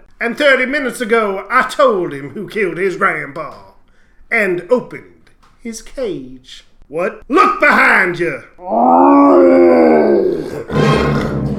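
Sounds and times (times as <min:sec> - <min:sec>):
speech: 0:00.2 - 0:03.7, 0:04.3 - 0:11.3
grizzly bear roaring: 0:08.6 - 0:11.5.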